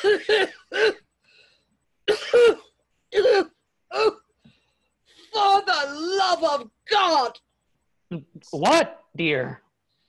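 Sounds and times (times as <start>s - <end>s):
speech: 0.0s - 0.5s, 6.5s - 7.4s, 8.1s - 9.6s
person wheezing and hacking cough out of breath after a fight: 0.0s - 1.1s, 2.1s - 4.3s.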